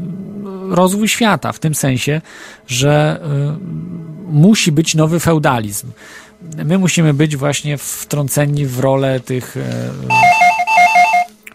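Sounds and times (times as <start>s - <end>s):
speech: 0.7s - 10.3s
electronic telephone ringing for an incoming call: 10.1s - 11.3s.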